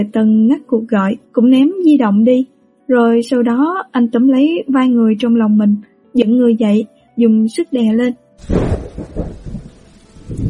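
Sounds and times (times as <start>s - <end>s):
speech: 0.0s - 9.4s
thunder rumbling during a lightning storm: 8.4s - 10.4s.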